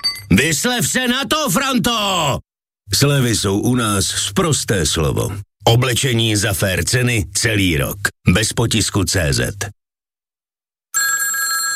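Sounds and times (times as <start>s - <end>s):
speech: 0.3s - 9.8s
telephone ringing: 10.9s - 11.7s.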